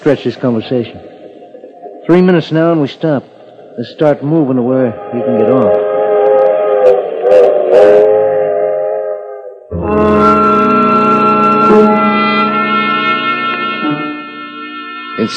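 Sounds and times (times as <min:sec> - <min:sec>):
speech: 0:00.0 - 0:01.1, 0:02.1 - 0:05.8
train chuffing as it pulls away: 0:02.1 - 0:09.2
train whistle blowing as train pulls away: 0:04.9 - 0:15.3.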